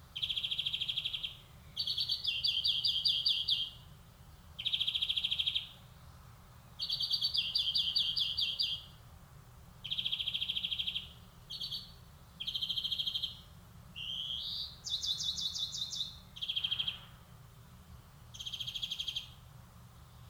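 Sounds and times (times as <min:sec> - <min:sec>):
European greenfinch Chloris chloris song: 0:00.0 - 0:03.9, 0:04.6 - 0:05.8, 0:06.8 - 0:09.0, 0:09.8 - 0:17.3, 0:18.3 - 0:19.4
faint low background hum: 0:00.0 - 0:20.2.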